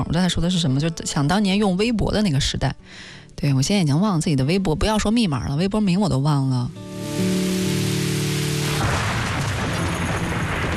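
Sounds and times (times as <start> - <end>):
speech: 0.0 - 7.3
steady rain falling: 6.8 - 10.7.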